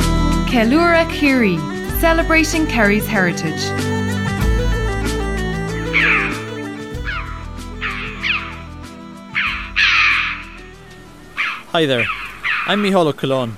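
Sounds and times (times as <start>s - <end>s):
background music with sustained tones: 0.0s - 13.5s
speech: 0.5s - 4.0s, 11.7s - 13.5s
red-billed chough harsh calls in County Kerry: 5.4s - 13.0s.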